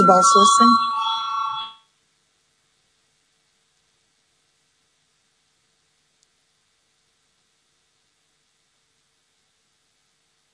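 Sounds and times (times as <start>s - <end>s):
speech: 0.0s - 0.9s
parliamentary voting electric bell ringing: 0.0s - 1.9s.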